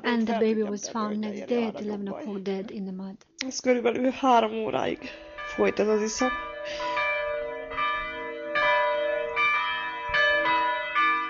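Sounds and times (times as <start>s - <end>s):
speech: 0.1s - 7.0s
church bells tolling at a memorial: 4.8s - 11.2s.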